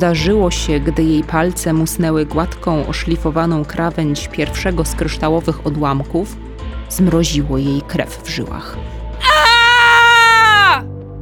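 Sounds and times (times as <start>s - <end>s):
speech: 0.0s - 9.4s
girl's piercing high scream: 9.2s - 10.9s.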